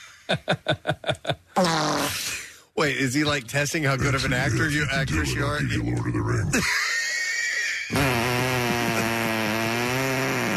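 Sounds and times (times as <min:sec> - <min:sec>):
speech: 0:00.3 - 0:01.9, 0:02.8 - 0:07.0
fart: 0:01.6 - 0:02.4, 0:07.9 - 0:10.5.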